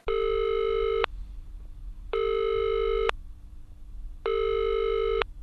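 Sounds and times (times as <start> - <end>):
telephone ringback tones of an outgoing call: 0.1 - 1.1, 2.1 - 3.1, 4.3 - 5.3.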